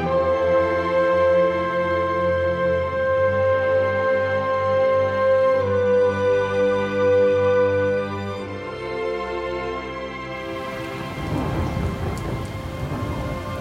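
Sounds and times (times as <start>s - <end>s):
sustained tonal music-like passage: 0.0s - 13.5s
heavy rain pouring down: 10.4s - 13.5s
low rolling rumble of thunder: 10.4s - 13.5s.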